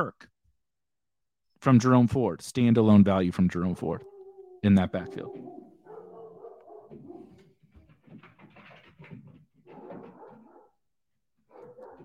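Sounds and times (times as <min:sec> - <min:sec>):
speech: 0:00.0 - 0:00.3, 0:01.6 - 0:05.6
dogs barking: 0:04.0 - 0:07.6, 0:09.7 - 0:10.8, 0:11.4 - 0:12.0
dogs whining: 0:04.0 - 0:07.6, 0:11.5 - 0:12.0.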